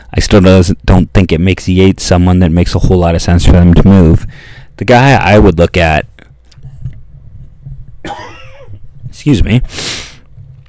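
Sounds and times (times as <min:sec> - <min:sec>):
speech: 0:00.1 - 0:06.1, 0:09.2 - 0:10.0
cough: 0:08.0 - 0:08.8.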